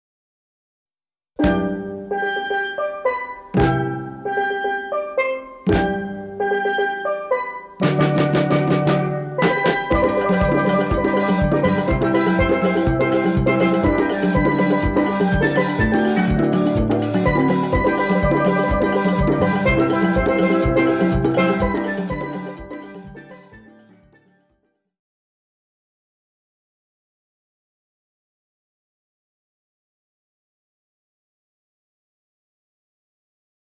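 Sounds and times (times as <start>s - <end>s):
calypso steel drum music: 1.4s - 24.3s.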